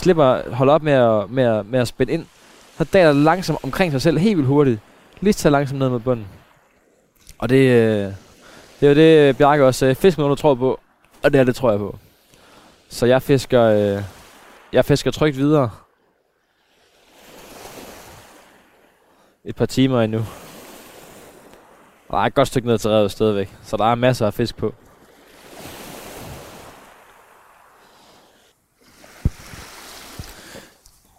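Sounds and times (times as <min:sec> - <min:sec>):
speech: 0:00.0 - 0:06.4, 0:07.4 - 0:08.2, 0:08.8 - 0:12.0, 0:12.9 - 0:15.8, 0:19.4 - 0:20.4, 0:22.1 - 0:24.8
small waves lapping gently against a shore: 0:00.0 - 0:31.1.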